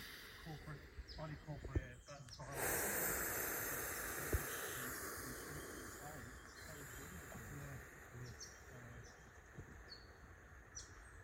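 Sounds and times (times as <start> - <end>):
soft breathing during a meditation: 0.0 - 1.5, 2.4 - 9.8.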